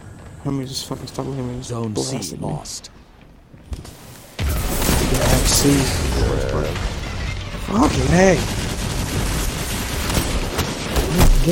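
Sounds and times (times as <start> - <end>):
speech: 0.4 - 3.0, 5.5 - 7.0, 7.7 - 8.6, 11.1 - 11.5
video game hand cannon gunfire: 4.4 - 11.5.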